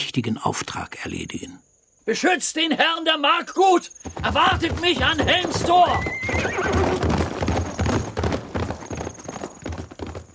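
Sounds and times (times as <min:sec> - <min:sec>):
speech: 0:00.2 - 0:07.1
horse galloping hoofbeats: 0:03.8 - 0:10.3
horse whinnying: 0:05.2 - 0:08.2.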